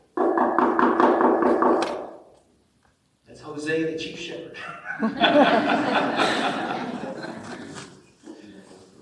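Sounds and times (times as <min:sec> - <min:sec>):
firm knocks on a door: 0:00.2 - 0:01.8
speech: 0:03.6 - 0:06.6
laughter: 0:04.6 - 0:08.0.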